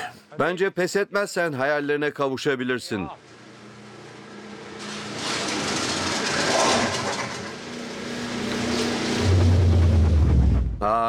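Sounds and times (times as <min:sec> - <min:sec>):
speech: 0:00.4 - 0:03.4
boat or vehicle engine sputtering and breaking down: 0:04.8 - 0:10.9
low droning tone: 0:08.3 - 0:10.9.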